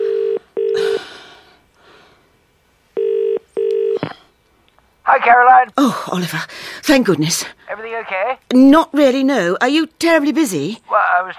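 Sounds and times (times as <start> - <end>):
phone line ringing tone on an outgoing call: 0.0 - 1.0, 3.0 - 4.0
speech: 5.2 - 11.3.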